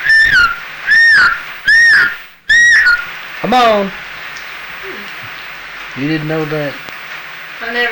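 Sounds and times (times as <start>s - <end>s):
person whistling to call a horse: 0.0s - 3.1s
speech: 3.4s - 4.0s, 6.0s - 6.8s, 7.6s - 7.9s.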